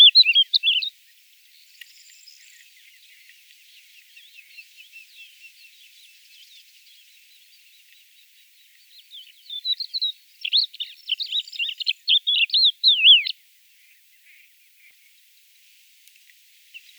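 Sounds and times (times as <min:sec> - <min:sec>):
Galerida cristata crested lark whistling and chattering: 0:00.0 - 0:00.9, 0:09.6 - 0:13.3.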